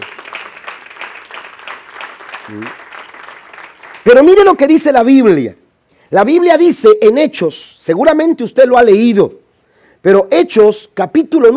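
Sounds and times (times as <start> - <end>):
audience applauding: 0.0 - 4.5
speech: 2.5 - 2.8, 4.0 - 9.4, 10.0 - 11.5.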